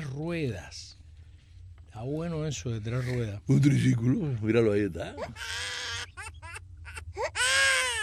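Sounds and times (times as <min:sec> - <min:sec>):
speech: 0:00.2 - 0:00.9, 0:02.0 - 0:05.7
baby crying loudly: 0:05.2 - 0:08.0.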